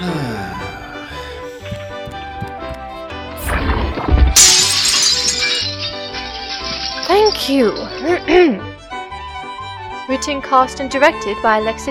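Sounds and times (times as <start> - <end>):
steady music: 0.0 - 11.8
mirror being smashed, glass shattering: 3.4 - 8.5
falling mirror glass shards: 3.5 - 8.3
speech: 7.4 - 8.7, 10.1 - 11.8.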